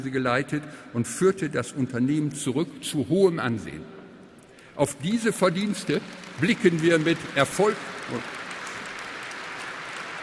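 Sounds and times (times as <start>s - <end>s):
speech: 0.0s - 4.0s, 4.8s - 8.4s
audience applause during a corporate address: 5.6s - 10.2s.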